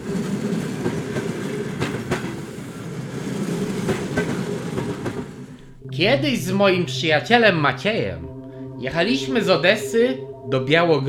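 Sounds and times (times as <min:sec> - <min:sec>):
train wheels clacking over rail joints: 0:00.0 - 0:05.9
suburban train rumbling in motion: 0:00.0 - 0:11.0
speech: 0:06.0 - 0:11.0.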